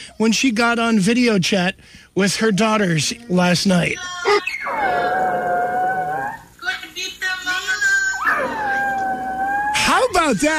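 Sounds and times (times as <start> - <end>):
speech: 0.0 - 5.1, 10.3 - 10.5
dog howling: 4.3 - 6.5, 8.1 - 10.2.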